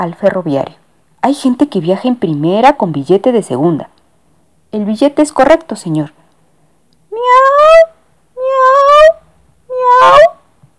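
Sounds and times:
speech: 0.0s - 3.9s, 4.7s - 6.2s
cat meowing energetically: 7.1s - 10.4s.

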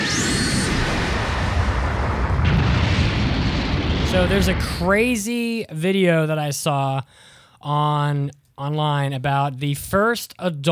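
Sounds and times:
energy blast explosion with rising whine and crackling boom: 0.0s - 5.2s
speech: 4.1s - 10.7s.

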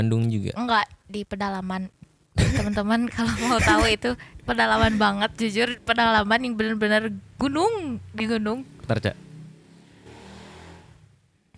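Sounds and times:
speech: 0.0s - 9.2s
laughter: 2.4s - 4.0s, 4.8s - 5.2s
motorcycle engine passing by outdoors: 7.8s - 11.3s.

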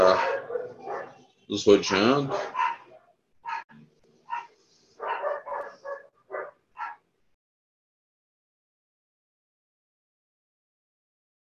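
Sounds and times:
dog barking: 0.0s - 1.2s, 1.8s - 3.7s, 4.3s - 7.0s
speech: 1.5s - 2.6s.

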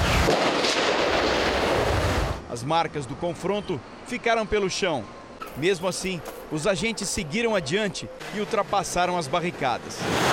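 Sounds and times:
rapid gunfire: 0.0s - 2.3s
speech: 2.6s - 10.3s.

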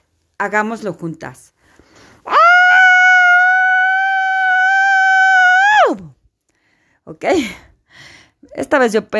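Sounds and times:
speech: 0.4s - 1.5s, 7.2s - 7.6s, 8.6s - 9.1s
woman screaming muffled into a pillow: 2.3s - 6.1s.

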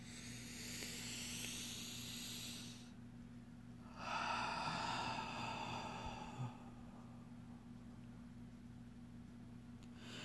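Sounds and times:
deep breaths during a guided relaxation session: 0.0s - 3.0s, 3.8s - 7.4s, 9.9s - 10.2s
faint steady hum: 0.0s - 10.2s.

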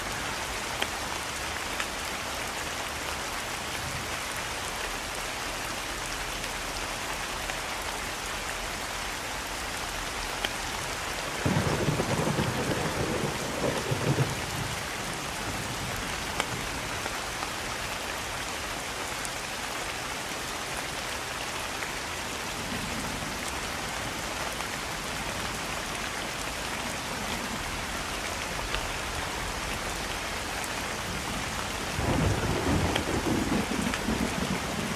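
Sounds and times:
rain falling through trees in a foggy forest at night: 0.0s - 34.9s
thunder rumbling: 11.3s - 15.9s, 31.8s - 34.9s.

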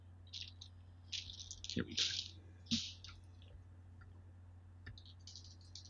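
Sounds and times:
plastic dice rattling inside a soft bag while someone rummages: 0.3s - 3.2s, 5.0s - 5.8s
speech: 1.8s - 2.9s.

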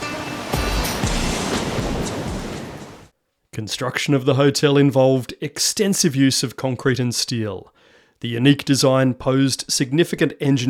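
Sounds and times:
ocean waves crashing: 0.0s - 3.1s
wind buffeting: 0.0s - 3.1s
speech: 3.6s - 10.6s.

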